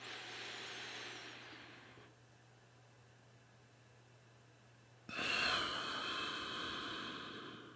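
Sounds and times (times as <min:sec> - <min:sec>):
slow deliberate breathing in counts of four: 0:00.0 - 0:02.2, 0:05.1 - 0:07.7.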